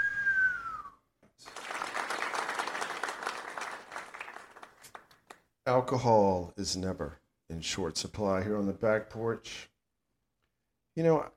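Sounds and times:
short falling whistle: 0.0s - 1.1s
loud crowd cheering: 1.4s - 5.2s
speech: 5.7s - 9.7s, 11.0s - 11.3s.

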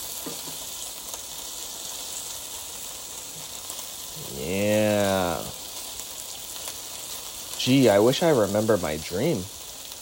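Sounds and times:
bacon frying in a pan with spitting fat: 0.0s - 10.0s
faint crackles of frying fat: 0.0s - 10.0s
speech: 7.6s - 9.6s.

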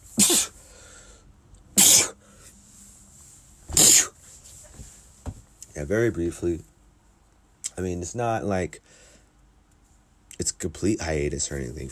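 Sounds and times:
person sneezing: 0.1s - 0.6s, 1.8s - 2.2s, 3.7s - 4.2s
quiet breathing: 0.6s - 1.4s, 2.2s - 3.6s, 8.8s - 10.1s
speech: 5.8s - 6.7s, 7.8s - 8.8s, 10.5s - 11.8s.

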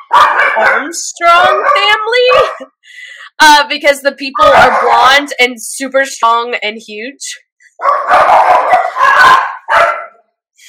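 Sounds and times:
dogs barking: 0.0s - 2.8s, 4.4s - 5.4s, 7.8s - 10.3s
speech: 0.6s - 9.9s.

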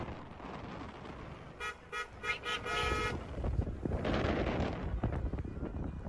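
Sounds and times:
engines and road noise from a convoy in Texas: 0.0s - 6.0s
car horns honking from a convoy in Texas: 1.5s - 3.4s.

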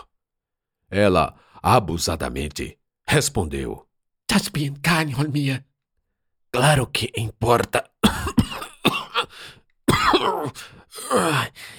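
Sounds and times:
speech: 0.9s - 5.7s, 6.5s - 8.2s, 10.2s - 11.7s
man coughing violently with hacking bursts: 8.0s - 11.4s.

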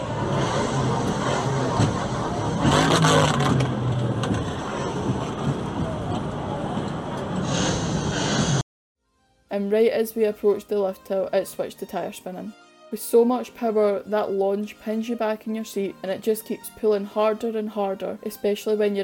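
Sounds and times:
engine revving played from ride speakers: 0.0s - 5.2s
heavy wind: 0.0s - 8.6s
rumbling noise: 0.0s - 8.6s
speech: 9.6s - 19.0s.

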